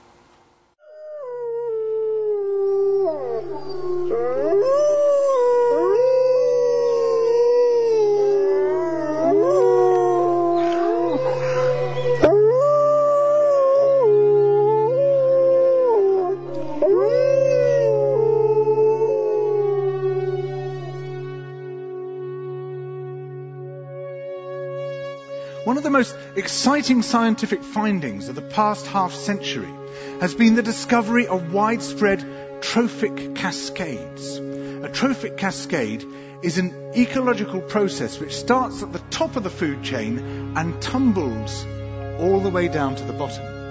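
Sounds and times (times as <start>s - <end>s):
wolf pack howling: 1.0s - 20.9s
speech: 25.9s - 43.5s.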